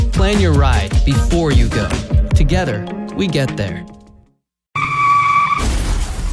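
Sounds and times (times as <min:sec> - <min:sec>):
speech: 0:00.3 - 0:04.0
car tires screeching as a speeding car skids: 0:04.8 - 0:05.6
car crash: 0:04.8 - 0:06.3.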